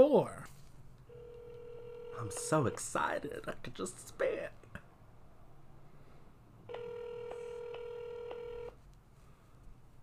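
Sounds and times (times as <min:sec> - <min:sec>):
speech: 0:00.0 - 0:00.5, 0:02.2 - 0:04.6
buzzy electronic phone tone of a telephone number being dialed: 0:01.1 - 0:02.3, 0:06.7 - 0:08.7.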